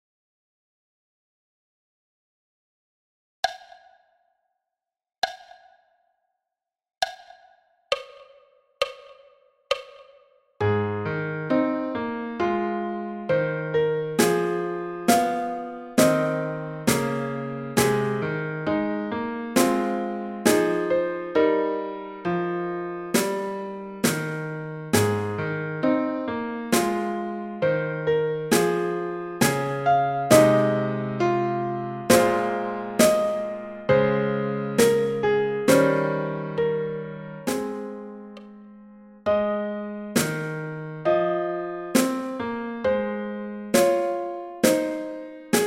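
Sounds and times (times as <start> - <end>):
drum at 67 bpm: 3.5 - 4.0, 5.2 - 5.9, 7.0 - 10.3, 15.1 - 17.2, 23.2 - 24.4, 32.1 - 33.5, 37.5 - 37.9, 40.2 - 40.6, 43.8 - 45.6
piano at 67 bpm: 10.6 - 45.6.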